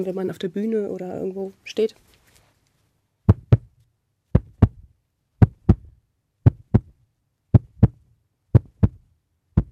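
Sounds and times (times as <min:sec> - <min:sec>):
speech: 0:00.0 - 0:02.1
heartbeat: 0:03.3 - 0:03.7, 0:04.4 - 0:09.7.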